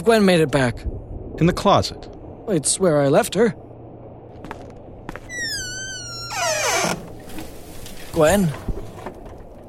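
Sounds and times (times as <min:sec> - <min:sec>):
speech: 0:00.0 - 0:03.6, 0:08.2 - 0:08.7
door squeaking on its hinges: 0:05.3 - 0:07.2.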